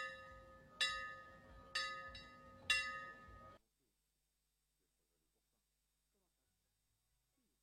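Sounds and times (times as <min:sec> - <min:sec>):
bell ringing at the opening of the festival on La Digue: 0:00.0 - 0:03.6.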